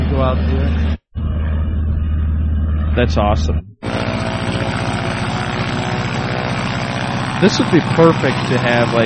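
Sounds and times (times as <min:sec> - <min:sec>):
small airplane engine drone with propeller buzz taxiing at low power: 0:00.0 - 0:09.0
speech: 0:00.2 - 0:01.0, 0:03.0 - 0:04.0, 0:07.4 - 0:09.0.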